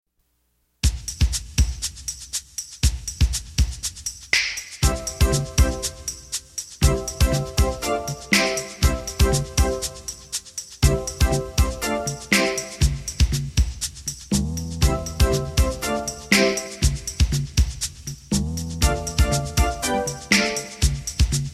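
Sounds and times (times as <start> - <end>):
instrumental music: 0.8 - 21.5.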